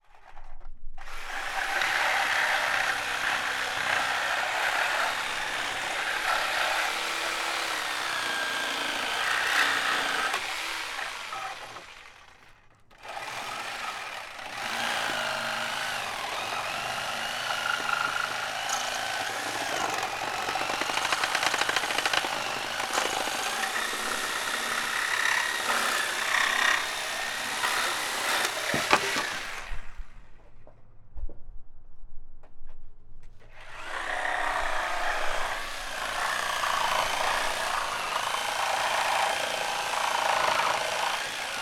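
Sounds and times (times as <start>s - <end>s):
reciprocating saw: 1.0s - 30.1s, 33.5s - 41.6s.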